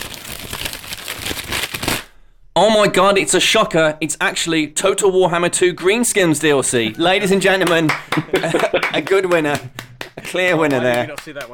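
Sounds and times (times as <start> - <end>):
large paper envelope being opened with crinkling paper: 0.0 - 2.1
speech: 2.6 - 11.5
laughter: 6.9 - 11.5.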